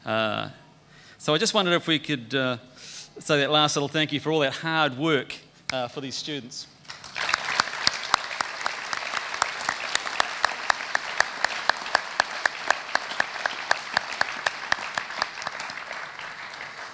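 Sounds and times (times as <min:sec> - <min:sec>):
speech: 0:00.0 - 0:00.6, 0:01.2 - 0:06.7
audience applause for graduating students: 0:06.9 - 0:16.9.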